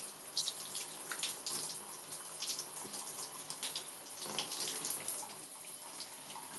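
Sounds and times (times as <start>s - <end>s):
shower water spray running during a quick rinse: 0.0s - 6.5s.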